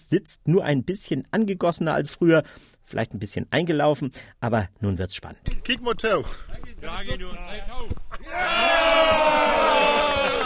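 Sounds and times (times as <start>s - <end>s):
speech: 0.0s - 9.9s
loud crowd cheering and shouting: 8.1s - 10.4s.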